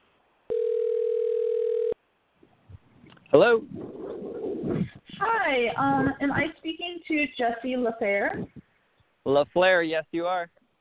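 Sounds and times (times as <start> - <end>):
telephone dial tone while a call is being placed: 0.5 - 2.0
speech: 3.3 - 3.9, 4.6 - 8.6, 9.2 - 10.6.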